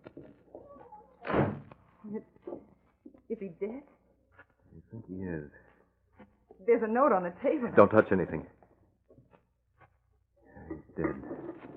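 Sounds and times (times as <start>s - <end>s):
door shutting: 1.2s - 1.8s
speech: 2.1s - 2.6s, 3.3s - 4.0s, 4.9s - 5.6s, 6.6s - 8.6s.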